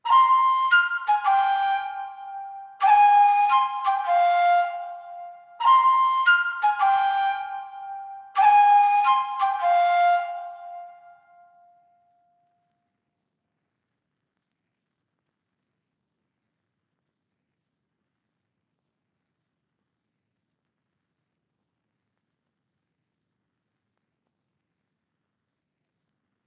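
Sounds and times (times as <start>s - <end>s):
trap flute melody loop in F minor at 173 BPM: 0.1s - 11.6s.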